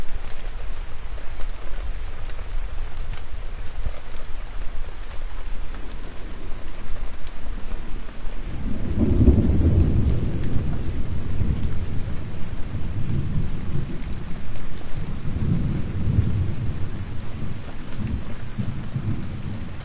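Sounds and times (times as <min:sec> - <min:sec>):
steady dense rain in a thunderstorm: 0:00.0 - 0:19.8
deep rolling thunder: 0:08.2 - 0:19.8.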